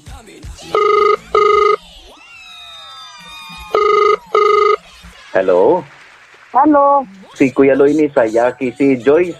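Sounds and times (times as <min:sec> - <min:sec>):
speech: 0:00.2 - 0:01.0, 0:05.4 - 0:09.3
faint noise: 0:00.6 - 0:09.3
telephone ringing on an outgoing call in a double-ring pattern: 0:00.7 - 0:01.8, 0:03.7 - 0:04.8.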